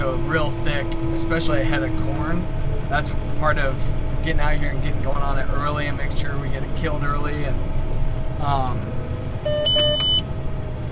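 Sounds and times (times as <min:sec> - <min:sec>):
continuous tractor engine rumble: 0:00.0 - 0:10.8
speech: 0:00.2 - 0:07.8, 0:08.4 - 0:09.0
tractor auto steer system beeping: 0:09.4 - 0:10.3.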